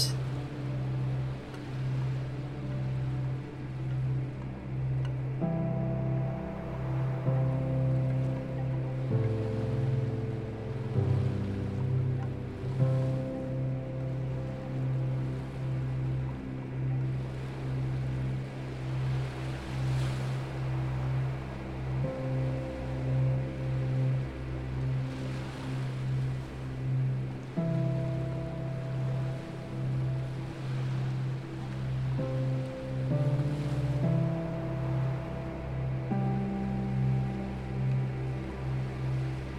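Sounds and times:
ocean waves washing in and drawing back: 0.0s - 39.5s
soft sustained musical tones: 0.0s - 39.5s.

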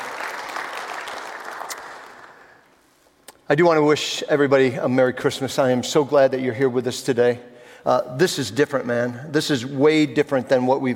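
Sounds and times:
congregation applauding: 0.0s - 2.6s
speech: 3.5s - 10.9s.

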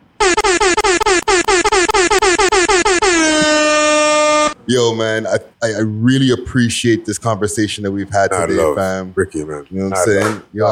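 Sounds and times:
air horn sound effect blasts: 0.2s - 4.6s
speech: 4.7s - 10.7s.

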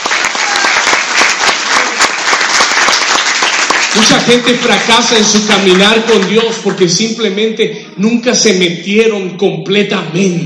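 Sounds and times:
audience applauding: 0.0s - 6.9s
speech: 4.0s - 10.4s.

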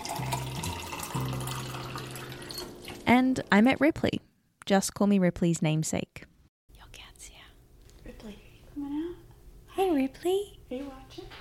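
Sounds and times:
water poured into a glass at a dining table: 0.0s - 2.7s
speech: 3.1s - 6.3s, 9.8s - 11.3s.

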